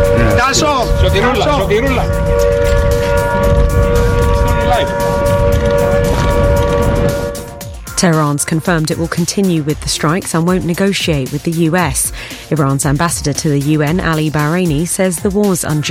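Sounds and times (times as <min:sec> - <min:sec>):
military base warning siren wailing during a drone attack in Cyprus: 0:00.0 - 0:08.9
rumble: 0:00.0 - 0:10.2
indistinct voices: 0:00.0 - 0:15.1
speech: 0:00.5 - 0:05.1, 0:08.0 - 0:15.9.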